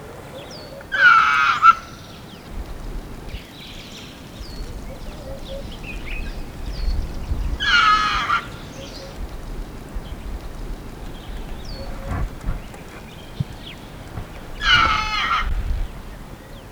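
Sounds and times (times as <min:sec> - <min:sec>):
Procavia capensis alarm call: 0:00.4 - 0:16.7.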